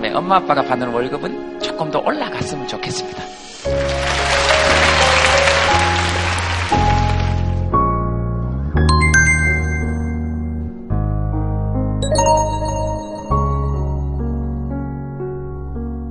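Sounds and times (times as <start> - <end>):
music playing: 0.0 - 11.1, 11.8 - 15.3
speech: 0.1 - 4.2
audience applause: 3.6 - 7.6.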